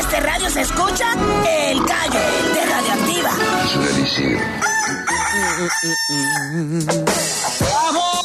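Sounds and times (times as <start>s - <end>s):
speech: 0.2s - 8.0s
rooster crowing: 4.4s - 6.6s.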